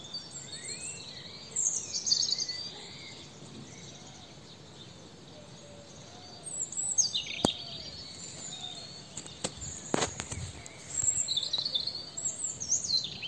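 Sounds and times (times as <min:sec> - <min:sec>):
European robin Erithacus rubecula song: 0:00.0 - 0:13.2
steady hiss: 0:03.3 - 0:13.2.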